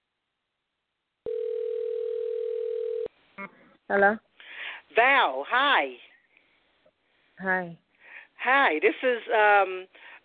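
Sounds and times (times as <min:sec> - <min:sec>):
telephone dial tone while placing a call: 0:01.2 - 0:03.1
speech: 0:03.4 - 0:04.3, 0:05.0 - 0:06.1, 0:07.4 - 0:07.8, 0:08.4 - 0:10.1.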